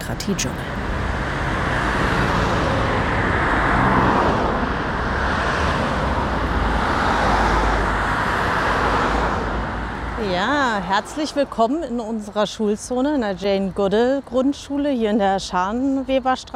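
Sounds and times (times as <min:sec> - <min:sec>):
cars rushing past on a four-lane road through a neighbourhood: 0:00.0 - 0:12.4
speech: 0:00.1 - 0:00.8, 0:10.8 - 0:16.5.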